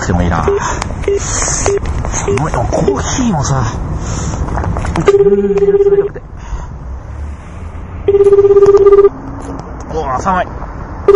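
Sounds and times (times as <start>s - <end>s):
steady noise: 0.0s - 11.1s
speech: 0.1s - 6.4s, 8.1s - 11.1s
telephone ringback tone while a call waits to be answered: 5.0s - 6.2s, 8.1s - 9.2s.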